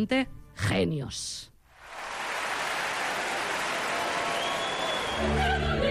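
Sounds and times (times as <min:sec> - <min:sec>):
speech: 0:00.0 - 0:01.5, 0:05.2 - 0:05.7
audience applauding: 0:01.8 - 0:05.8.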